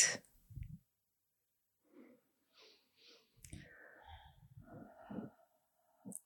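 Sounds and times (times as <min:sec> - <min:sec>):
deep breaths through the nose during a guided breathing exercise: 0:02.6 - 0:06.1
faint vocal noises: 0:03.4 - 0:06.2.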